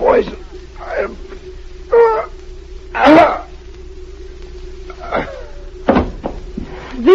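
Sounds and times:
low steady hum: 0:00.0 - 0:07.1
heavy thump: 0:05.8 - 0:06.8
poisoned man falling off a chair: 0:05.9 - 0:06.8.

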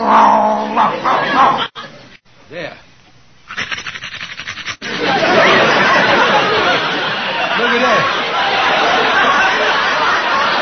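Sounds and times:
man on all fours imitating a dog's growl: 0:00.0 - 0:00.8
laughter: 0:00.9 - 0:02.1, 0:04.8 - 0:10.6.

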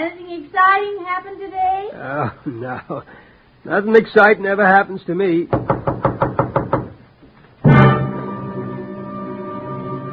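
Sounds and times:
speech: 0:00.4 - 0:05.9
knocking on a front door: 0:05.5 - 0:07.0.

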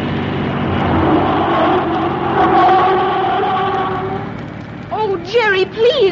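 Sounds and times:
car engine accelerating up a winding hill road: 0:00.0 - 0:06.0.

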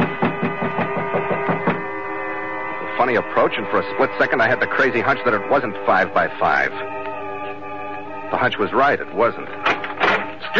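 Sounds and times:
footsteps on stairs: 0:00.0 - 0:01.9
constant low mechanical hum: 0:00.0 - 0:10.5
speech: 0:03.0 - 0:07.0, 0:08.3 - 0:09.7.

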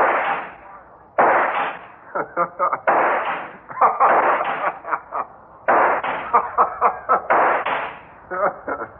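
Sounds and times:
gunshots fired at a robot: 0:00.0 - 0:00.6, 0:01.2 - 0:02.0, 0:02.8 - 0:04.8, 0:05.7 - 0:06.3, 0:07.3 - 0:08.0
laughter: 0:02.0 - 0:02.9, 0:03.6 - 0:05.4, 0:06.2 - 0:07.4, 0:08.3 - 0:08.9.

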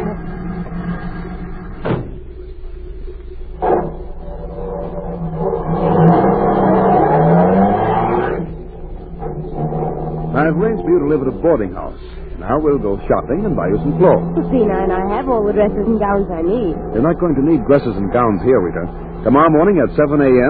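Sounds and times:
car engine idling with a low rumble: 0:00.0 - 0:20.4
car engine revving with a rising whine as the car pulls away: 0:05.2 - 0:20.4
speech: 0:10.5 - 0:20.4.

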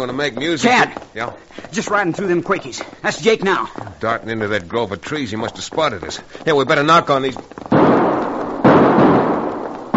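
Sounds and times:
speech: 0:00.0 - 0:07.8
gunshots fired from a grove of aspens: 0:07.6 - 0:09.9.

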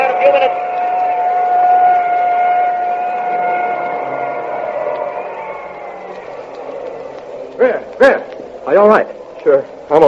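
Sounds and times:
ambulance siren at a car race crash: 0:00.0 - 0:07.7
broad noisy wash: 0:00.0 - 0:10.0
speech: 0:08.8 - 0:10.0.

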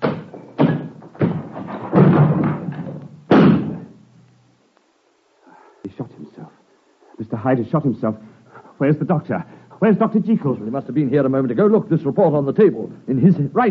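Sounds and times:
door being battered in with heavy booming blows: 0:00.0 - 0:04.0
speech: 0:07.4 - 0:13.7.

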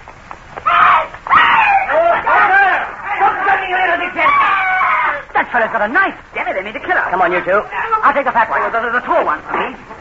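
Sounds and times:
woman screaming: 0:00.7 - 0:02.8, 0:04.2 - 0:05.3
speech: 0:05.6 - 0:09.9.

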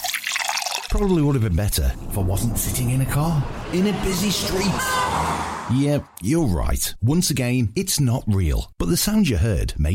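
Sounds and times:
drink poured into a glass at a barbecue: 0:00.0 - 0:01.0
speech: 0:00.9 - 0:09.9.

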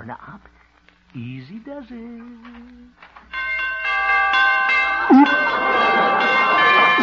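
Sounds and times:
speech: 0:00.0 - 0:03.1
door chimes ringing: 0:03.3 - 0:07.0
short vocal exclamation: 0:05.1 - 0:05.3.

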